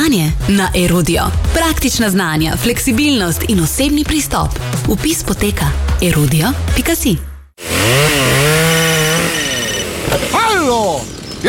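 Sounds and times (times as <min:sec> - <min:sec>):
speech: 0:00.1 - 0:07.8, 0:10.6 - 0:11.4
chainsaw cutting: 0:07.6 - 0:11.4.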